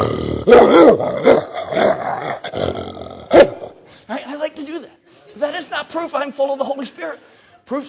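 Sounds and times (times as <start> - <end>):
speech: 0.0 - 1.4, 6.0 - 7.8
man imitating a barking dog: 0.4 - 2.0.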